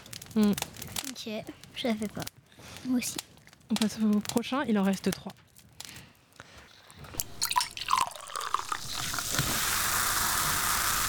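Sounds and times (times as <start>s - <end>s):
speech: 0.4s - 5.4s
water being poured: 6.9s - 11.0s.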